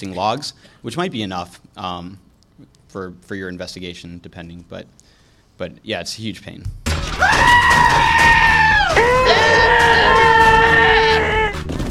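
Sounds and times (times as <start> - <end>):
speech: 0.0 - 8.4
goat screaming: 7.2 - 11.6.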